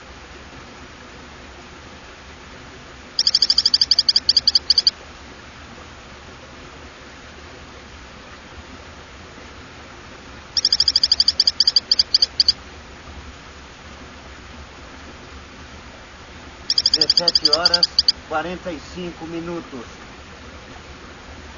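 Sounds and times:
steady hiss: 0.0s - 21.5s
Hylodes phyllodes frog high whistled calls: 3.2s - 4.9s, 10.6s - 12.6s, 16.7s - 18.2s
speech: 17.2s - 20.0s.

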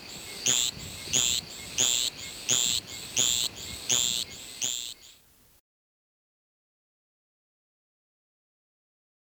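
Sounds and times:
Javelin frog Litoria microbelos zeet calls: 0.0s - 5.2s.

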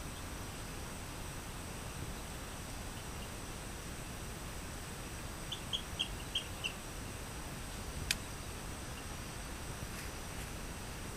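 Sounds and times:
steady hiss: 0.0s - 11.1s
Rio Grande chirping frog chirping: 5.5s - 6.8s.

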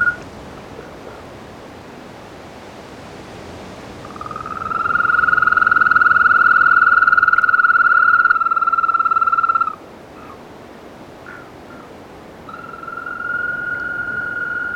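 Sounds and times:
African green toad trilling, Bufotes boulengeri: 4.0s - 10.4s, 12.5s - 14.7s.

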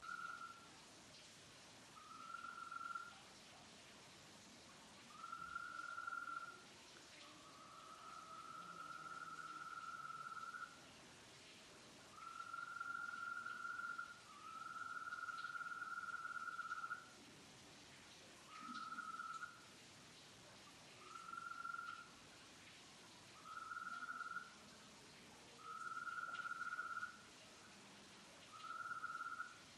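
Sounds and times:
Bufotes oblongus: 2.0s - 3.2s, 5.1s - 6.6s, 7.6s - 10.8s, 12.2s - 17.1s, 18.6s - 19.6s, 21.0s - 22.1s, 23.4s - 24.5s, 25.6s - 27.2s, 28.6s - 29.6s.

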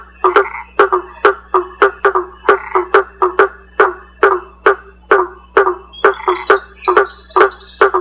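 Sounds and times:
blacksmith tree frog Boana faber knocking calls: 0.0s - 7.9s
low steady hum: 0.0s - 7.9s
faint high insect-like whine: 5.9s - 7.9s.

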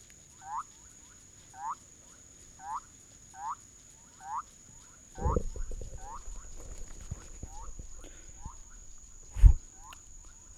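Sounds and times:
steady high hiss: 0.0s - 10.5s
Bolivian thin-toed frog Leptodactylus bolivianus calling: 0.4s - 0.8s, 2.6s - 3.6s, 4.2s - 4.5s, 5.1s - 10.5s.

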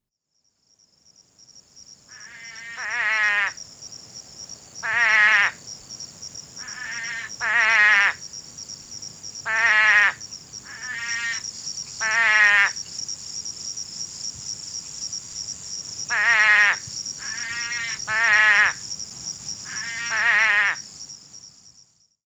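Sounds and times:
Scaphiopus couchii calling: 4.8s - 5.6s, 6.6s - 8.2s, 9.4s - 11.4s, 12.0s - 12.8s, 16.1s - 18.8s, 19.7s - 20.8s.

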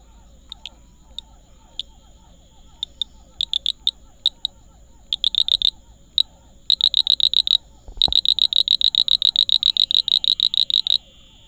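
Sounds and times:
Pseudopaludicola ameghini calling: 0.0s - 11.4s.

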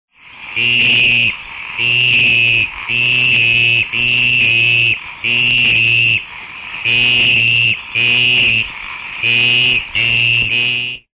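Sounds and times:
Scaphiophryne brevis frog calling: 0.1s - 11.1s.

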